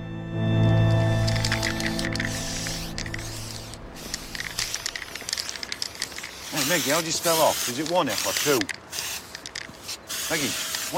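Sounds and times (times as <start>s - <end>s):
low hum: 0.0s - 6.0s
aerosol spray paint can spraying graffiti on a shop wall: 1.2s - 10.9s
speech: 6.7s - 8.8s, 10.3s - 10.9s.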